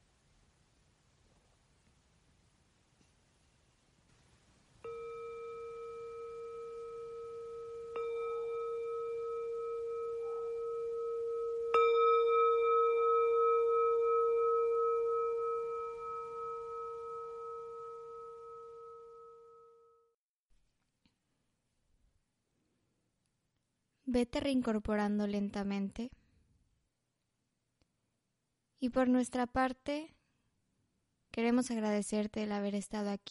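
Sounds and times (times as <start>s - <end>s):
meditation bell ringing: 4.8s - 20.2s
speech: 24.2s - 26.2s, 28.8s - 30.2s, 31.4s - 33.2s.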